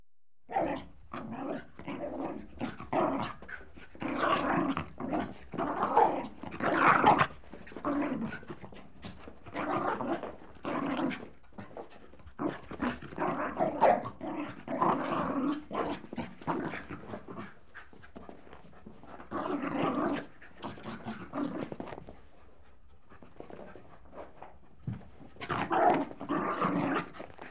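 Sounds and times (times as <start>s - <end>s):
Jack Russell Terrier and Corgi cross dog growling and huffing while leaping: 0.6s - 11.8s, 12.4s - 17.7s, 19.0s - 22.0s, 25.4s - 27.5s.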